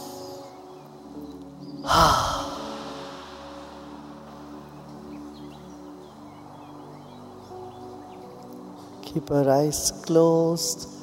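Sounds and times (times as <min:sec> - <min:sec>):
quiet sustained music: 0:00.0 - 0:11.0
deep breath in during a calming breathing exercise for anxiety: 0:01.8 - 0:04.4
speech: 0:09.2 - 0:11.0.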